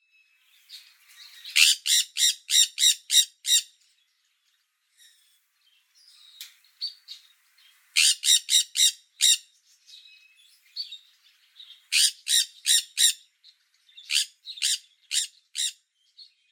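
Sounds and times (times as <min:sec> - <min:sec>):
sun conure Aratinga solstitialis calling: 0:01.5 - 0:03.8, 0:08.0 - 0:09.5, 0:11.9 - 0:13.2, 0:14.0 - 0:15.8.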